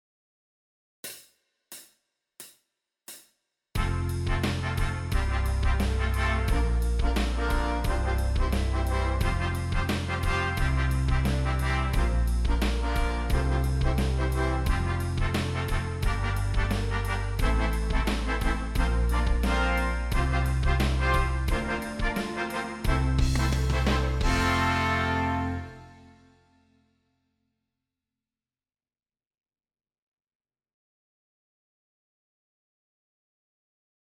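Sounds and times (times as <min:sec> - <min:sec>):
D horns playing warm-up in fifths: 0:03.8 - 0:26.3.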